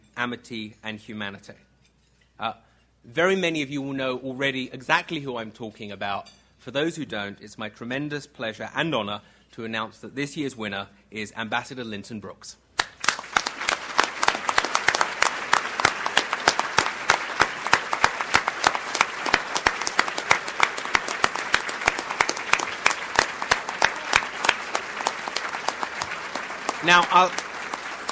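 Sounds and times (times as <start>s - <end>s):
speech: 0.2s - 1.7s, 2.4s - 12.6s, 26.9s - 27.4s
audience applause at an award ceremony: 12.8s - 28.1s.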